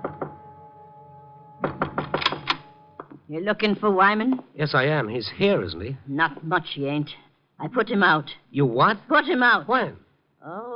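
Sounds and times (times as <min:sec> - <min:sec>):
knocking on a door: 0:00.0 - 0:00.4, 0:01.6 - 0:03.2
speech: 0:03.3 - 0:10.7.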